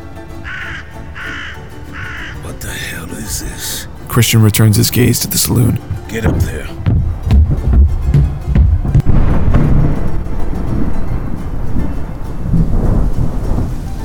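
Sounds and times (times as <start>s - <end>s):
heavy rain pouring: 2.4s - 14.0s
speech: 3.3s - 6.9s
deep rolling thunder with sharp cracks: 7.0s - 13.9s.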